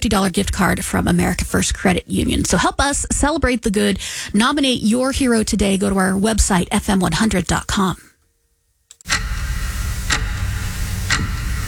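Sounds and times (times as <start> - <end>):
speech: 0.0 - 8.1
constant low hum: 0.0 - 11.6
clock-like ticking sound effect: 8.9 - 11.6.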